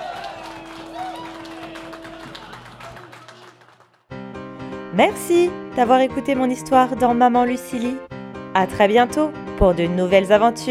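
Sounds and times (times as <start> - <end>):
crowd cheering with cries of joy acclaiming a new king: 0.0 - 4.0
music: 0.0 - 10.6
speech: 5.0 - 10.6.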